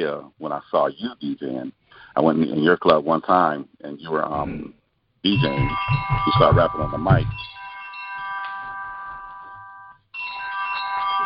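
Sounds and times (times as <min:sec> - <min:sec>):
speech: 0:00.0 - 0:07.6
mobile phone ringing with an electronic ringtone: 0:05.4 - 0:11.2.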